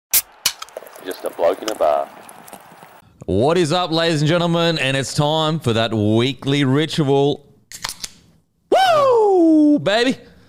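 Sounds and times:
beer can cracked open: 0.1 - 3.0
beer fizz hissing: 0.7 - 3.0
speech: 1.0 - 2.3, 3.2 - 7.4, 9.8 - 10.3.

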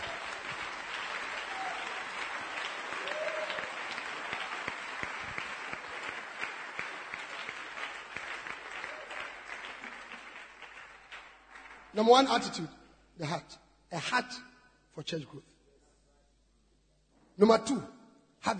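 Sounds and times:
crowd clapping: 0.0 - 12.5
speech: 12.0 - 15.5, 17.4 - 18.5.

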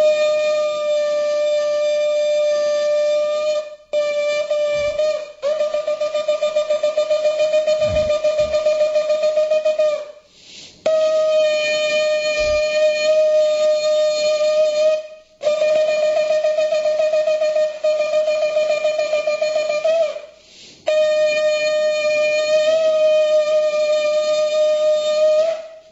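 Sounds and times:
shofar ram's horn blasts sounded in temple after the Torah reading: 0.0 - 10.2, 10.8 - 25.6.

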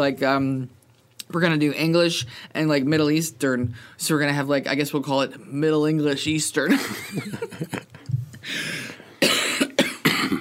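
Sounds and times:
speech: 0.0 - 8.8
person coughing: 9.2 - 10.3.

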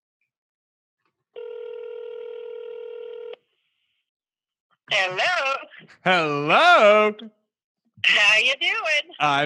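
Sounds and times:
loud steady electronic telephone tone: 1.4 - 3.4
speech: 4.9 - 7.4, 8.0 - 9.4.

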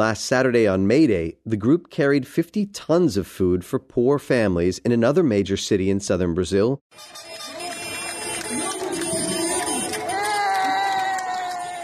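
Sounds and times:
speech: 0.0 - 7.5
sustained horn-like tone: 6.9 - 10.5
large crowd cheering and shouting in downtown streets: 7.0 - 11.8.

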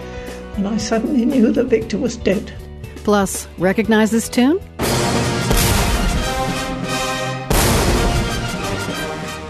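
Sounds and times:
speech: 0.6 - 4.8
full orchestra playing a grand brassy passage: 4.8 - 9.4.

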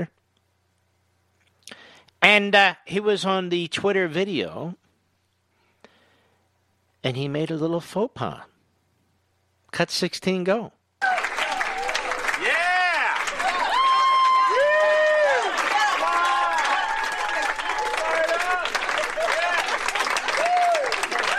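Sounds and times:
speech: 2.2 - 4.8, 7.0 - 8.5, 9.7 - 11.2
audience whoops and cheering voices: 11.0 - 21.3
large crowd applauding: 11.0 - 21.3.

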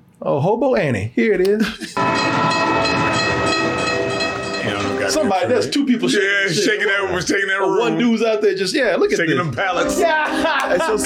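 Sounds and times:
speech: 0.2 - 3.8, 4.7 - 11.0
train riding the rails with rolling wagons: 2.0 - 4.9
laughter: 9.8 - 11.0.

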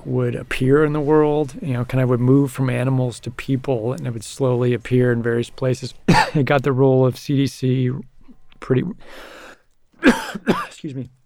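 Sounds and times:
speech: 0.0 - 9.4, 10.0 - 11.2
person coughing: 6.1 - 6.4, 10.0 - 10.8
person clearing throat: 10.0 - 10.8.

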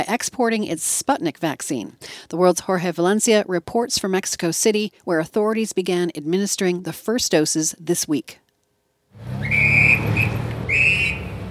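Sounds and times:
speech: 0.0 - 8.4
street traffic rumble in southern Mexico City: 9.2 - 11.5
police whistle directing street traffic outside a vaccination site in Mexico City: 9.4 - 11.5.

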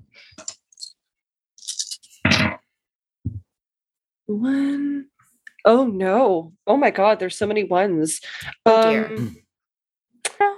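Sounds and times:
six dice clattering across a hard surface: 1.6 - 2.2
speech: 4.3 - 9.4.

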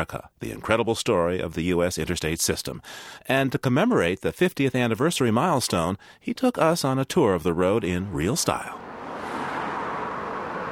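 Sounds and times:
speech: 0.0 - 8.9
1951 Hudson car driving on road: 8.1 - 10.6.

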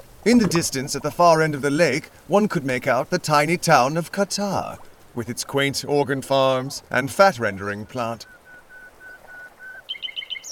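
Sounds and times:
speech: 0.2 - 8.4
birdsong piped through speakers: 7.7 - 10.5.

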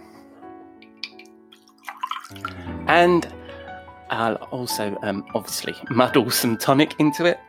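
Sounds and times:
ice clinking in a glass: 1.0 - 2.5
gin poured into a glass with ice: 1.0 - 2.8
speech: 2.3 - 3.4, 4.1 - 7.4.

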